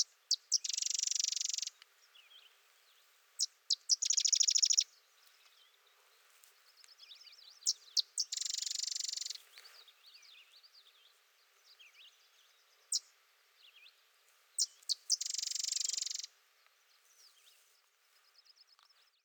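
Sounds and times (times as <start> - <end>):
thin twittering bird notes: 0.0 - 14.0, 14.6 - 19.2
sedge wren song: 0.0 - 19.2.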